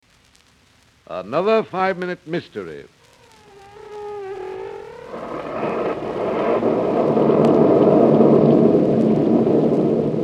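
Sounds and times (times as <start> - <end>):
speech: 1.1 - 3.0
storm roar with rumbling low-end: 3.0 - 10.2.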